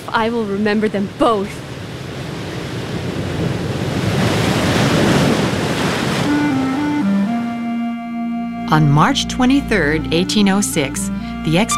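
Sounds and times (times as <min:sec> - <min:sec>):
ocean waves and surf roaring: 0:00.0 - 0:07.6
speech: 0:00.1 - 0:01.6, 0:08.7 - 0:11.7
soft sustained melody of stepping tones: 0:06.3 - 0:11.7.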